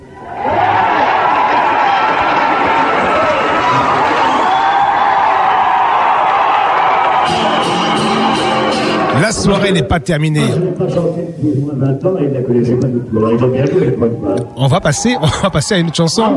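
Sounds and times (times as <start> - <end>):
live concert audience cheering and applauding the band: 0.0 - 9.8, 14.6 - 16.3
speech: 9.4 - 16.3.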